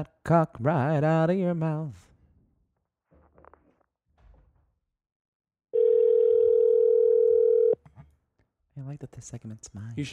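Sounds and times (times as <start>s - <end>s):
speech: 0.0s - 2.1s, 8.8s - 10.1s
electronic telephone ringing tone from a phone call being placed: 5.8s - 7.8s.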